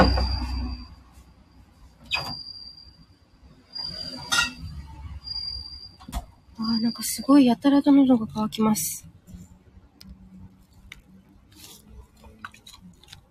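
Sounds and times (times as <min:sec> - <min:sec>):
bell cricket chirping in high ringing notes: 0:00.0 - 0:01.7, 0:02.4 - 0:07.5
speech: 0:07.0 - 0:09.1.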